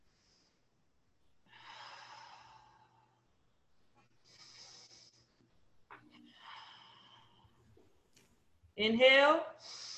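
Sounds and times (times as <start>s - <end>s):
deep belly breathing, inhaling and exhaling: 0.0s - 7.8s.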